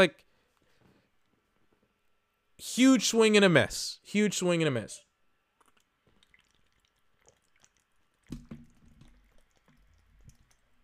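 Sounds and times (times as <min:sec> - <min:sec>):
speech: 0:00.0 - 0:00.3, 0:02.6 - 0:05.0
person drinking a swig of water: 0:05.6 - 0:10.8.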